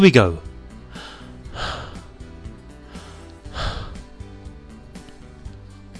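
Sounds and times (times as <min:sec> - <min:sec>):
speech: 0:00.0 - 0:00.5
person breathing slowly: 0:00.8 - 0:04.6.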